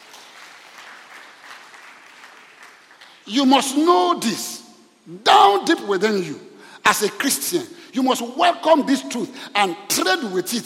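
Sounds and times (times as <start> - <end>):
crowd clapping during a sermon: 0.0 - 3.3
speech: 3.3 - 10.6.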